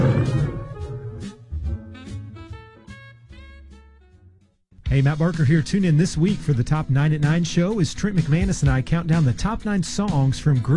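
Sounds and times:
bright tonal musical sting with pulsing accents: 0:00.0 - 0:01.3
brief rough growling lion roar: 0:00.0 - 0:01.4
speech: 0:04.9 - 0:10.7.

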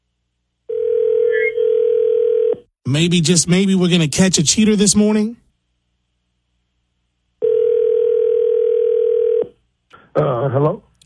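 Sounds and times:
telephone line tone: 0:00.7 - 0:02.6, 0:07.4 - 0:09.5
speech: 0:02.9 - 0:05.4.

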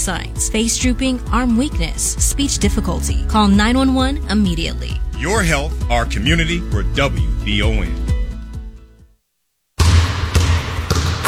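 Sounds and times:
speech: 0:00.0 - 0:08.1
basketball bouncing on a floor at a community event: 0:09.8 - 0:11.2.

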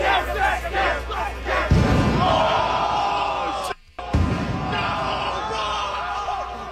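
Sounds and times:
dense roaring crowd shouting and cheering: 0:00.0 - 0:06.6
loud firecracker blasts: 0:01.6 - 0:03.0, 0:04.0 - 0:05.5.

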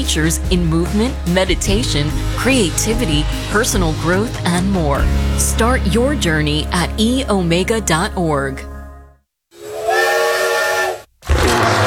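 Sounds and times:
speech: 0:00.0 - 0:08.7
steam train whistle blast: 0:09.6 - 0:11.8.

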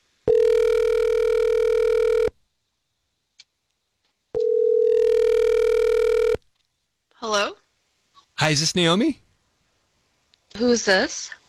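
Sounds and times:
telephone ringing tone heard down the line: 0:00.3 - 0:02.3, 0:04.4 - 0:06.4
speech: 0:08.5 - 0:09.2, 0:10.6 - 0:11.4.

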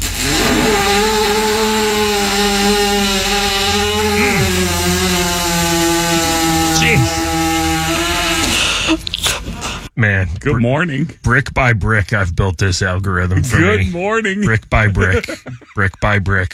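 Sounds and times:
loud harsh buzzing animal call: 0:00.2 - 0:08.7
laughter: 0:03.9 - 0:04.7, 0:13.2 - 0:16.5
speech: 0:10.4 - 0:16.5.

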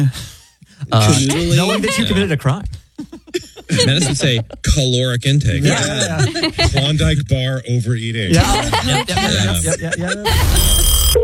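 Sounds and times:
speech: 0:00.0 - 0:00.3, 0:00.9 - 0:02.8, 0:03.7 - 0:11.0
laughter: 0:00.8 - 0:07.4, 0:08.3 - 0:10.7
voice-like sound: 0:08.3 - 0:10.6
telephone ringing unanswered: 0:10.3 - 0:11.2.

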